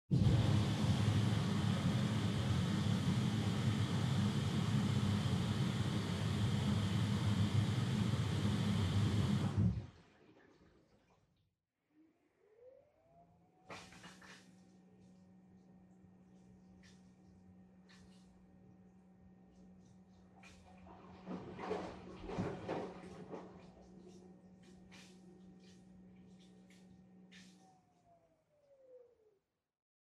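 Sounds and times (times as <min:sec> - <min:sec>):
front load washing machine running: 0:00.1 - 0:10.0, 0:13.4 - 0:29.0.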